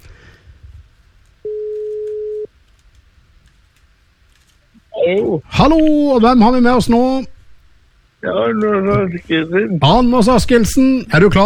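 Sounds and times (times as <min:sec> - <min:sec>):
steady telephone ringback tone: 0:01.5 - 0:02.5
speech: 0:05.1 - 0:07.3, 0:08.2 - 0:11.4.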